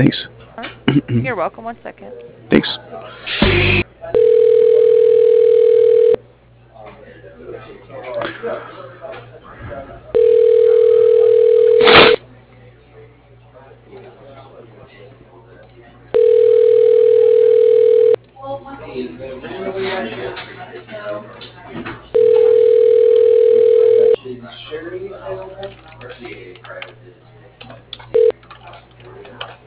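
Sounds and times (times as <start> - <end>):
speech: 0.0 - 0.3, 1.0 - 4.2, 8.4 - 10.0
telephone ringback tone while a call is transferred to voicemail: 4.2 - 6.2, 10.2 - 12.2, 16.2 - 18.2, 22.2 - 24.2.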